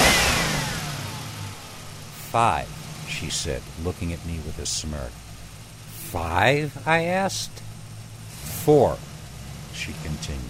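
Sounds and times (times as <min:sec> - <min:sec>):
car engine revving: 0:00.0 - 0:10.4
speech: 0:02.3 - 0:05.2, 0:06.1 - 0:07.6, 0:08.7 - 0:09.1, 0:09.8 - 0:10.4.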